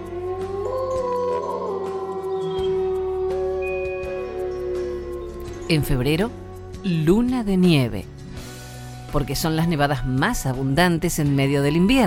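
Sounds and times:
chorus of wolves howling together: 0.0 - 6.8
speech: 5.7 - 8.2, 9.1 - 12.0.

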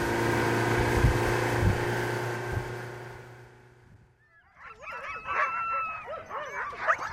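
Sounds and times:
steady motor drone: 0.0 - 4.0
pack of huskies barking, yipping and howling restlessly: 4.2 - 7.1.

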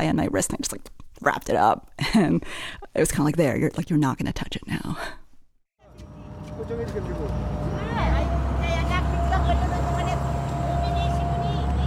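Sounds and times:
speech: 0.0 - 5.2, 6.6 - 7.5
industrial old fishing boat motor droning: 5.8 - 11.8.

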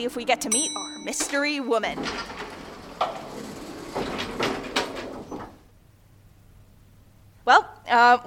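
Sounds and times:
speech: 0.0 - 3.2, 7.5 - 8.2
elevator doors sliding open: 0.0 - 6.0
hum: 0.0 - 7.4.

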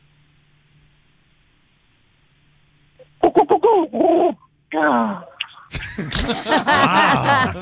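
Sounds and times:
man vocally imitating a stoned ostrich: 3.0 - 4.4
laughter: 5.7 - 7.6.

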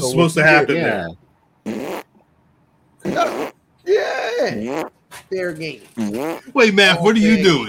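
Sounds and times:
speech: 0.0 - 2.0, 3.0 - 7.6
fart: 1.6 - 2.1, 3.0 - 3.6, 4.5 - 5.0, 6.0 - 6.5.

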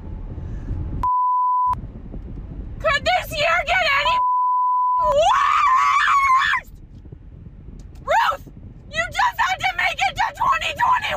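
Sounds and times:
low rumbling road and cabin noise in a car: 0.0 - 11.1
steady pure censor bleep tone: 1.0 - 1.8, 4.2 - 5.0.

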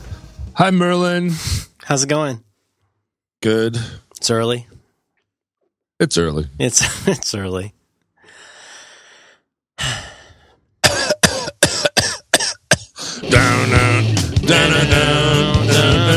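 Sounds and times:
speech: 0.6 - 2.5, 3.4 - 4.8, 6.0 - 7.8, 14.5 - 16.1
child breathy inhale: 8.2 - 10.7, 13.0 - 13.3
child hacking cough: 10.8 - 13.0
child sustained strained vocal sound: 13.0 - 16.1.

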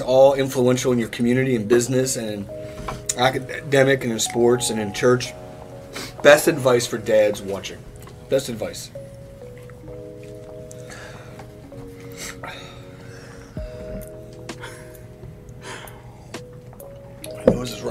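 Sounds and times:
speech: 0.0 - 9.0
steady tonal hum: 2.2 - 17.9
heavy labored breathing after eating something spicy: 10.6 - 16.6.

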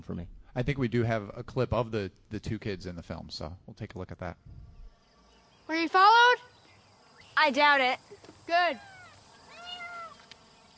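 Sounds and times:
speech: 0.0 - 4.6, 5.7 - 6.4, 7.4 - 8.9
cat meowing: 8.8 - 10.2
faint click: 10.1 - 10.4.

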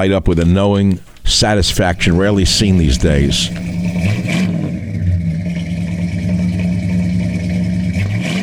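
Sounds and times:
speech: 0.0 - 4.4
1950s Cadillac V8 engine revving: 2.8 - 8.4.

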